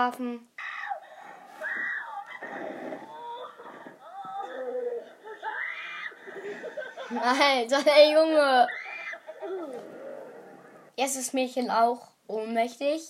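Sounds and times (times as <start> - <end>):
speech: 0.0 - 0.5, 7.1 - 8.8, 11.0 - 13.0
child screaming and wailing loudly: 1.6 - 2.4, 3.1 - 6.2, 8.6 - 9.8
laughter: 5.0 - 7.5.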